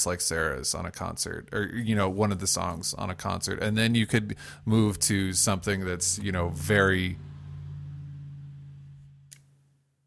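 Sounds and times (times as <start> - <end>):
speech: 0.0 - 7.3
car passing outside: 6.0 - 9.3
brief click: 9.3 - 9.5.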